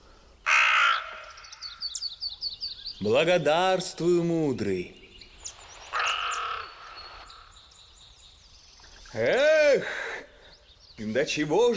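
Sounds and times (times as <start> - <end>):
raven cawing: 0.0 - 3.0, 5.0 - 11.1
speech: 3.0 - 5.0, 9.2 - 10.1, 11.0 - 11.7.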